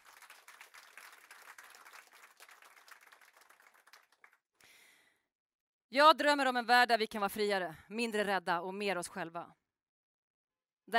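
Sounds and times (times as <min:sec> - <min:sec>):
audience applause: 0:00.0 - 0:04.4
speech: 0:05.9 - 0:09.6.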